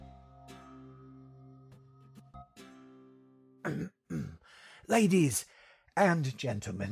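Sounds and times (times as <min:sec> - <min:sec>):
frail man coughing wetly: 0:03.7 - 0:04.4
speech: 0:03.7 - 0:06.9.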